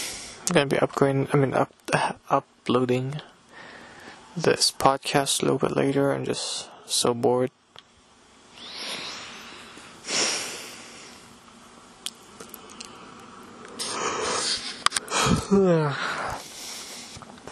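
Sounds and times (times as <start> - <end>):
speech: 0.5 - 3.3, 4.4 - 7.6, 15.5 - 16.1
soft breaths: 3.2 - 4.4, 8.5 - 11.5, 12.3 - 17.5
person yawning: 13.8 - 16.4.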